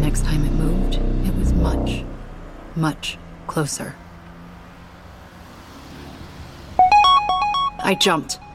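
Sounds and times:
speech: 0.2 - 2.2, 2.8 - 4.0, 7.9 - 8.4
phone text message notification tone: 6.8 - 8.5.

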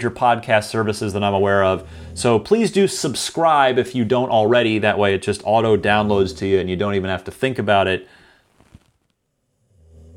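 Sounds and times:
speech: 0.0 - 8.2
low rough throaty rumbling snore: 1.1 - 2.5, 9.4 - 10.1
rustles: 8.5 - 9.1.

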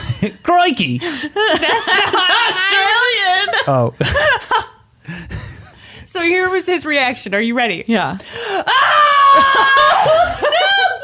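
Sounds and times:
speech: 0.2 - 5.3, 6.1 - 10.6
laughter: 1.4 - 5.8, 9.2 - 11.0
man screaming excitedly: 8.7 - 10.9.

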